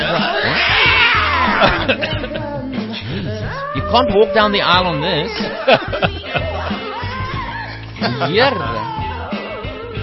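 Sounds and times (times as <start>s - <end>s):
laughter: 0.0s - 9.3s
played song with dense music: 0.0s - 10.0s
cat caterwauling yowls: 0.1s - 1.8s, 3.5s - 4.4s
speech: 3.9s - 6.5s, 8.0s - 8.8s.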